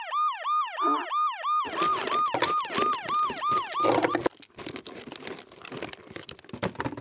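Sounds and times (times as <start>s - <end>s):
siren-style phone ringtone in rising whoops: 0.0s - 4.3s
clattering jangling handling noises: 1.6s - 6.9s.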